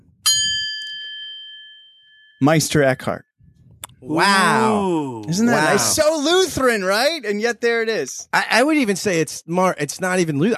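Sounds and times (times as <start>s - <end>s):
single bell struck and ringing: 0.2s - 2.5s
speech: 2.4s - 3.3s, 4.0s - 10.5s.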